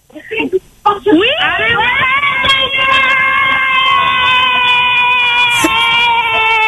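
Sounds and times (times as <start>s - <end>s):
speech: 0.2s - 2.1s
family group cheering: 1.6s - 6.6s.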